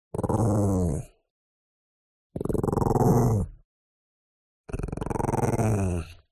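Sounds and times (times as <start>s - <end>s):
Chihuahua growling: 0.1s - 1.2s, 2.4s - 3.6s, 4.7s - 6.2s.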